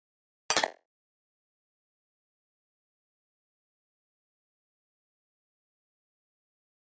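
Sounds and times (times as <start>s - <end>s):
button clicks: 0.5s - 0.8s.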